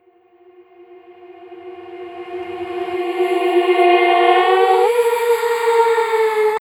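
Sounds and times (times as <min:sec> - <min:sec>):
vocal riser: 0:01.2 - 0:06.5.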